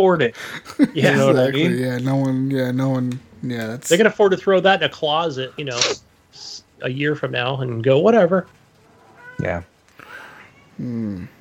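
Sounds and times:
speech: 0.0s - 8.6s, 9.4s - 9.7s, 10.8s - 11.3s
laughter: 0.4s - 2.3s
cat meowing: 8.8s - 9.7s.

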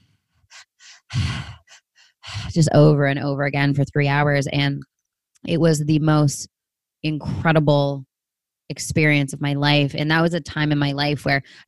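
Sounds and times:
conscious continual breathwork breathing: 0.0s - 2.6s
speech: 2.5s - 8.1s, 8.7s - 11.6s.

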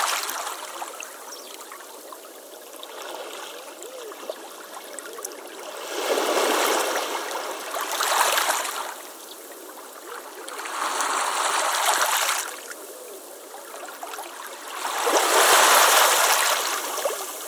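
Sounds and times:
small waves washing over pebbles in a gentle creek: 0.0s - 0.9s, 5.7s - 9.2s, 9.8s - 12.7s, 13.9s - 17.4s
rushing water surges: 0.0s - 3.8s, 4.6s - 17.4s.

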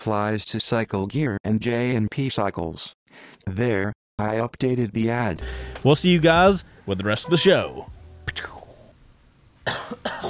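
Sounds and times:
speech: 0.0s - 8.6s, 9.7s - 10.2s
person coughing: 9.6s - 10.2s
throat clearing: 9.6s - 10.2s.

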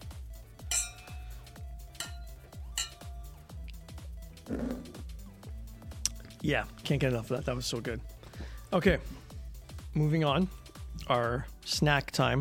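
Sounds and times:
steady rhythmic low thumping: 0.0s - 11.0s
beer glasses clinking in a toast: 0.7s - 3.2s
speech: 4.5s - 4.9s, 6.4s - 8.1s, 8.7s - 9.2s, 10.0s - 12.3s.

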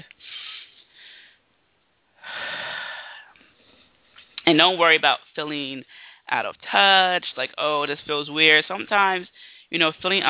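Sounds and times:
deep breathing during a guided breathing exercise: 0.2s - 1.5s, 2.2s - 4.1s, 5.9s - 6.3s, 9.3s - 9.7s
speech: 4.5s - 10.2s.

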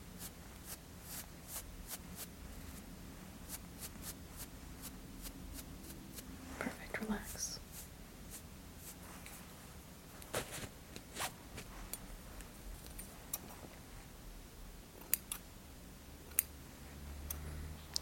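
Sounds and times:
soft hiss: 0.0s - 18.0s
scissors trimming beard hair: 15.0s - 15.4s.

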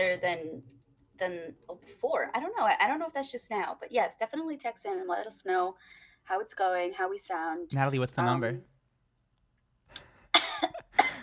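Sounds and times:
speech: 0.0s - 8.7s
person coughing from watermelon stuck in the throat: 10.4s - 11.2s.

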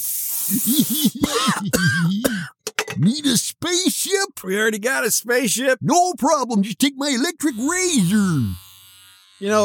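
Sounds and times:
aerosol body spray can hissing: 0.0s - 1.2s
speech: 0.0s - 2.3s, 3.0s - 8.7s, 9.4s - 9.6s.

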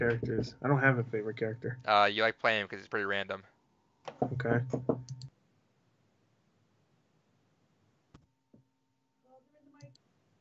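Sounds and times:
speech: 0.0s - 5.3s
knocks on a door: 4.2s - 5.1s.

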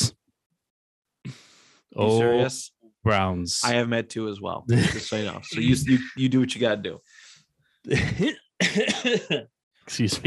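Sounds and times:
speech: 1.3s - 7.1s, 7.8s - 10.2s
person coughing and laughing: 4.7s - 6.2s, 7.9s - 9.5s.

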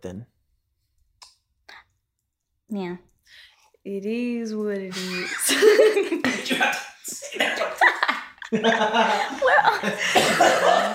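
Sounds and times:
speech: 0.0s - 0.4s, 2.7s - 10.9s
person chuckling: 4.9s - 10.9s
person coughing: 9.9s - 10.9s.

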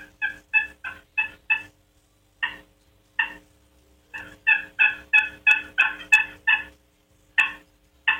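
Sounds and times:
soft hen turkey yelps made on a box call: 0.0s - 1.8s, 2.4s - 3.4s, 4.2s - 6.8s, 7.4s - 8.1s.

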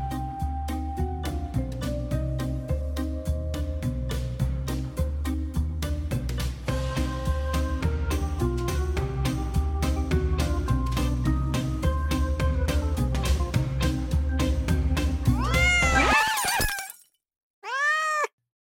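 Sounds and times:
steady rhythmic music track: 0.0s - 15.7s
domestic cat in a person's lap meowing: 15.3s - 16.4s, 17.6s - 18.4s.

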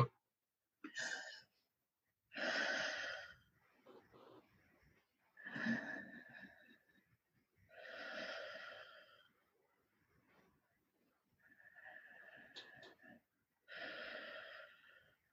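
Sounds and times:
slow deliberate breathing during a guided breathing exercise: 2.3s - 9.5s, 11.4s - 15.3s.

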